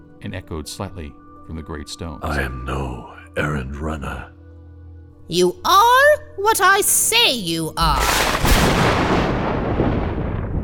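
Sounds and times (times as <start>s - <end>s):
speech: 0.2s - 4.4s, 5.3s - 9.2s
loud crack of thunder rolling into a deep rumble: 8.2s - 10.6s.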